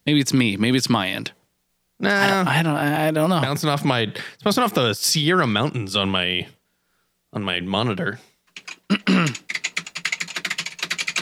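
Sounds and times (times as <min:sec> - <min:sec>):
speech: 0:00.1 - 0:01.4, 0:02.0 - 0:06.6, 0:07.3 - 0:08.3, 0:08.9 - 0:09.6
person clearing throat: 0:02.0 - 0:02.5, 0:08.9 - 0:09.5
mechanical keyboard typing: 0:08.5 - 0:11.1.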